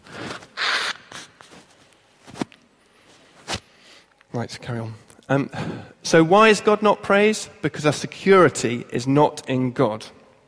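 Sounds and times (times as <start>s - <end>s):
person sniffing: 0.0s - 1.4s
person with a cold blowing their nose: 0.0s - 1.7s
soft rustles: 0.0s - 4.1s
speech: 4.4s - 10.2s.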